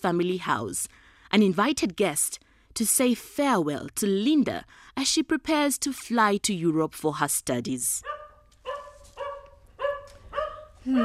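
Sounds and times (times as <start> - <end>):
speech: 0.0 - 8.2, 10.8 - 11.0
dog barking at the front door of a family house: 8.0 - 11.0.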